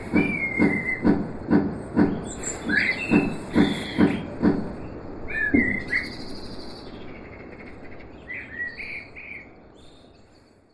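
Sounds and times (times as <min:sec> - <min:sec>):
blackbird singing fluty phrases: 0:00.0 - 0:01.2, 0:01.8 - 0:10.6
steady hiss: 0:00.0 - 0:07.6.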